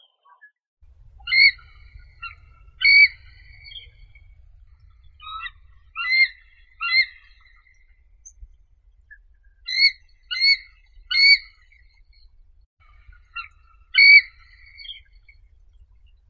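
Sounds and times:
white-headed eagle Haliaeetus leucocephalus: 1.0s - 16.2s.

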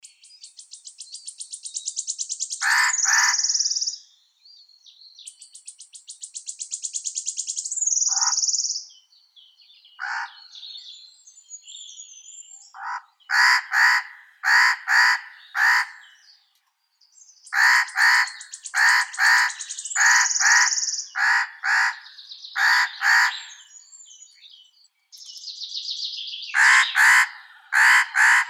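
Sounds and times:
spotted nutcracker Nucifraga caryocatactes calling: 0.9s - 4.0s, 5.9s - 8.9s, 10.0s - 11.0s, 12.6s - 16.3s, 17.4s - 24.0s, 26.3s - 28.4s.

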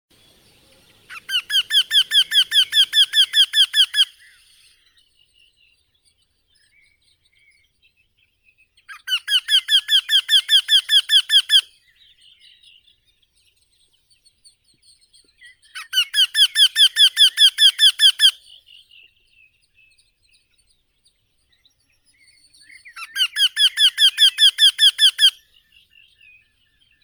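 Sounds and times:
Eurasian wryneck Jynx torquilla calling: 0.2s - 4.5s, 9.1s - 11.6s, 15.8s - 18.4s, 23.0s - 25.4s.

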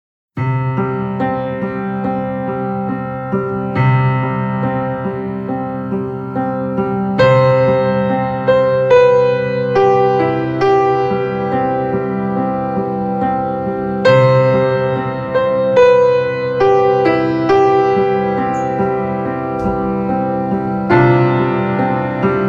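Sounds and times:
piano: 0.4s - 22.4s.

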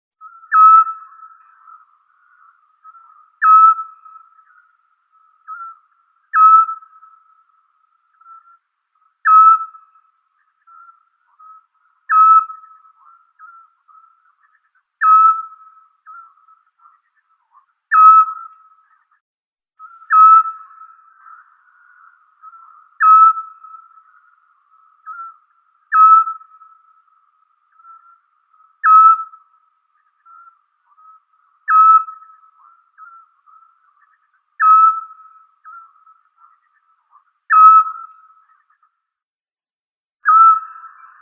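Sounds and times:
Otus scops: 0.2s - 19.2s, 19.8s - 39.0s, 40.2s - 41.1s.

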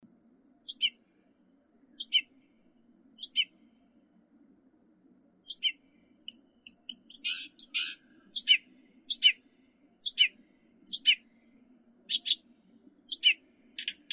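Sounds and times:
Blyth's reed warbler Acrocephalus dumetorum singing: 0.6s - 0.9s, 2.0s - 2.2s, 3.2s - 3.5s, 5.4s - 5.7s, 6.7s - 9.3s, 10.0s - 10.3s, 10.9s - 11.2s, 13.1s - 13.4s.

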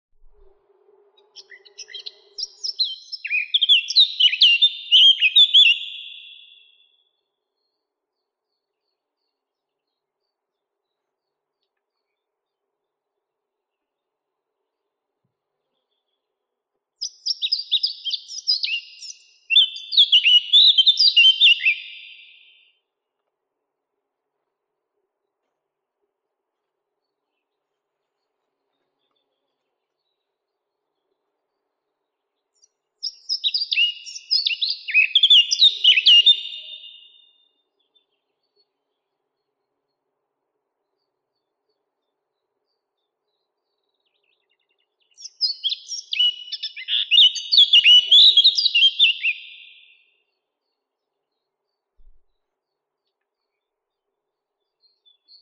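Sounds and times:
Sylvia atricapilla blackcap singing: 1.4s - 6.8s, 17.0s - 22.5s, 33.0s - 37.3s, 45.1s - 50.0s.

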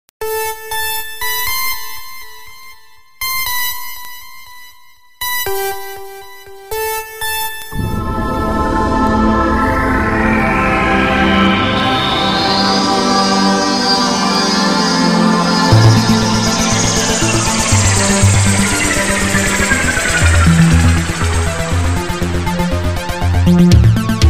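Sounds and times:
space synth: 6.8s - 24.2s.

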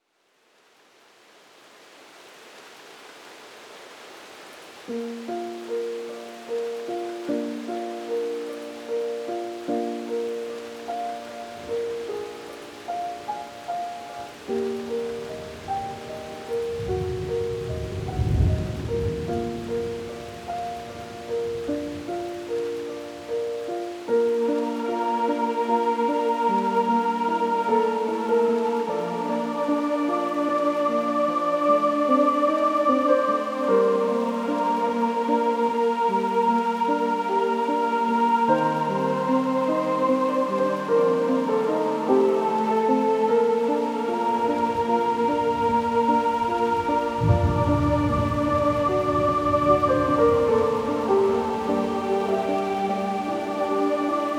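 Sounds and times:
classical sleep music: 4.5s - 54.3s
thunder: 16.8s - 21.0s, 46.7s - 51.5s.

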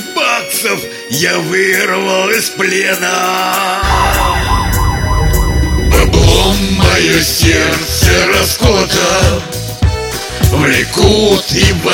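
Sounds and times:
speech: 0.3s - 4.6s, 6.4s - 9.6s, 10.5s - 11.9s
siren wailing: 3.8s - 7.6s
dense low rumble: 3.8s - 8.2s.

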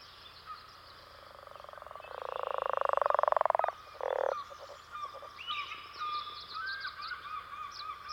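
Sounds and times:
leopard frog calling: 1.1s - 6.2s.

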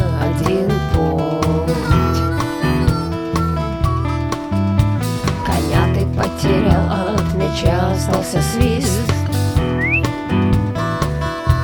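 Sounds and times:
dense band playing steady rhythmic music with punchy drum hits: 0.0s - 11.6s
short rising whistle: 9.7s - 10.2s.

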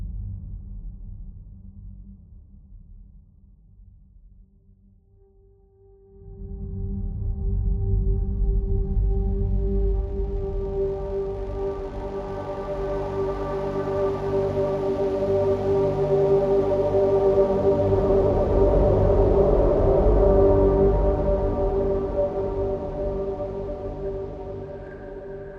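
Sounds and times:
ambient music: 5.2s - 25.5s.

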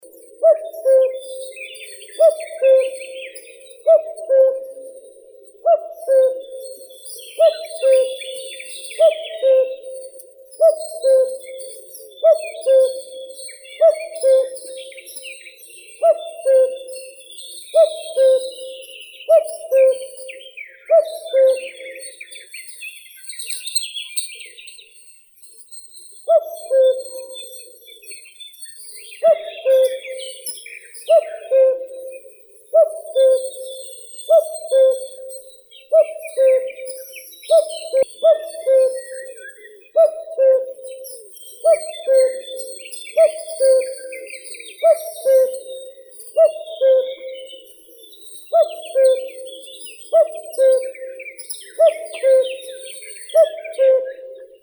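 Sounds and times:
common cuckoo Cuculus canorus: 0.0s - 22.7s, 26.2s - 54.6s.

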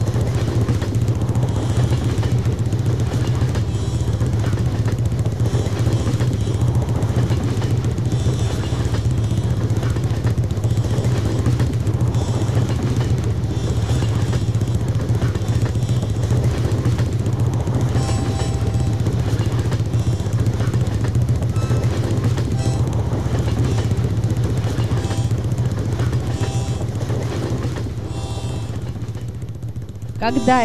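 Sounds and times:
moving train rumble: 0.0s - 30.6s
train rattling and clatter: 0.0s - 30.6s
speech: 30.2s - 30.6s.

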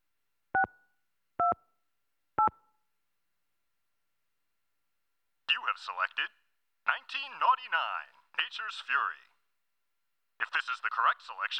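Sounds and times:
touch-tone telephone keypad beeps entering letters into an automated phone menu: 0.6s - 0.8s, 2.4s - 2.6s
speech: 5.8s - 9.3s, 10.4s - 11.5s.

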